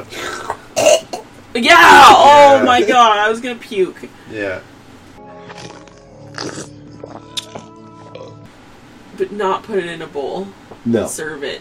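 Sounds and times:
wet gurgling burp: 0.0 - 1.3, 5.4 - 8.5
speech: 1.6 - 4.7, 9.2 - 11.5
short trailing gulp: 5.5 - 8.5.

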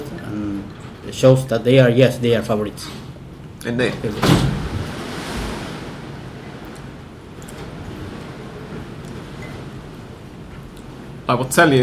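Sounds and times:
speech: 1.1 - 3.0, 3.6 - 4.5, 11.3 - 11.8
strong gust of wind around a building: 4.2 - 8.8.

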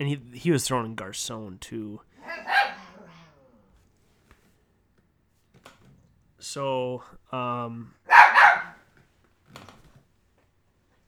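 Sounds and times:
speech: 0.0 - 2.8, 6.5 - 8.2
dog barking: 2.2 - 3.4, 8.1 - 8.8.

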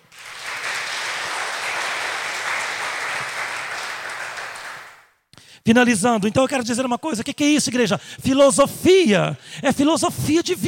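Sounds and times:
large crowd applauding: 0.0 - 5.1
speech: 5.6 - 10.6.

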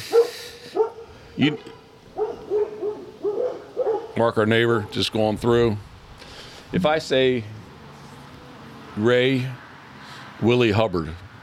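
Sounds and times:
dogs barking with deep hollow woofs: 0.0 - 5.1
speech: 1.4 - 1.8, 4.2 - 5.9, 6.7 - 7.6, 9.0 - 9.6, 10.4 - 11.2.

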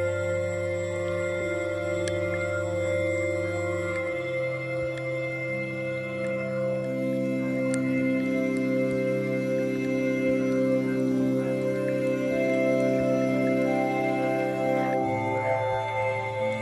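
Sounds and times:
underwater droning hum of layered low tones: 0.0 - 16.6
faint clicks and ticks: 1.3 - 2.6, 3.3 - 14.3.

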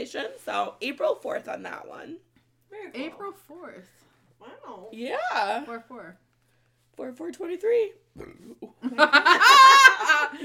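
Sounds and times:
speech: 0.0 - 6.2, 7.0 - 10.4
short throaty burp: 8.2 - 8.7
loud high-pitched laughter: 9.0 - 10.3.

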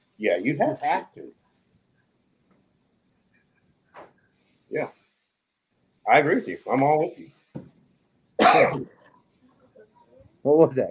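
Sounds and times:
speech: 0.2 - 1.4, 4.7 - 5.0, 6.1 - 7.4, 8.4 - 8.9, 10.4 - 10.9
loud harsh cough: 8.4 - 9.1.

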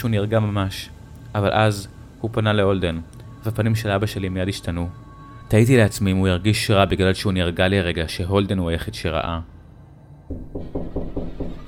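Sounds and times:
speech: 0.0 - 9.5, 10.3 - 10.8
firm knocking on a wooden home door: 10.3 - 11.6.

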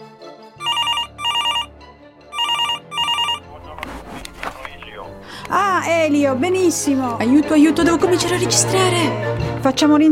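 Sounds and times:
telephone ringing with trilling bell tone: 0.6 - 1.7, 2.3 - 3.7
speech: 5.8 - 10.1.

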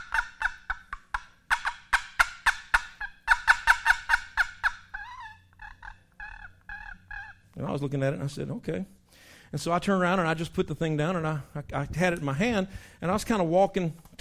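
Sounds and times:
wooden turkey box call giving raspy gobble-like yelps: 0.0 - 7.6
speech: 7.6 - 14.1.

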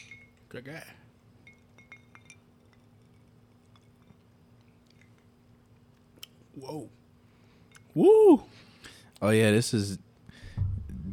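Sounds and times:
glasses clinking in a toast: 0.0 - 0.6, 1.4 - 4.3
speech: 0.0 - 1.0, 6.6 - 7.0, 8.0 - 8.6, 9.2 - 10.0
low steady hum: 0.0 - 9.2, 10.0 - 11.1.

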